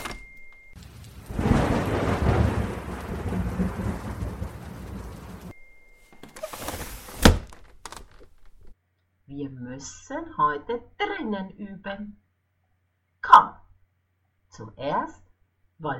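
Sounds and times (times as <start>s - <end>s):
steady rain pattering: 0.7s - 5.6s
deep roll and sharp crack of thunder: 0.8s - 5.6s
speech: 9.7s - 12.2s, 14.6s - 15.9s.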